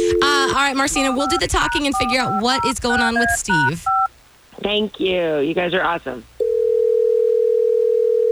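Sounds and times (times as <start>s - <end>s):
telephone dial tone as a phone call is placed: 0.0s - 4.1s, 6.4s - 8.3s
speech: 0.6s - 4.0s, 4.6s - 6.3s.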